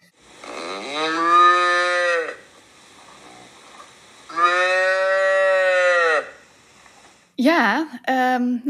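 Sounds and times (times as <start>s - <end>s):
calf mooing: 0.5s - 2.4s, 4.3s - 6.4s
speech: 7.4s - 8.6s.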